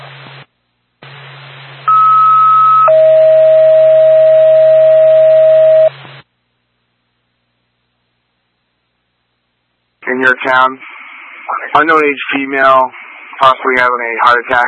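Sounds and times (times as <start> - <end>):
two-tone ambulance dispatch pager alert: 1.9 - 5.9
person speaking over radio: 10.0 - 10.9, 11.5 - 14.6
hissing radio channel: 10.0 - 14.6
speech: 10.3 - 11.0, 11.7 - 14.6.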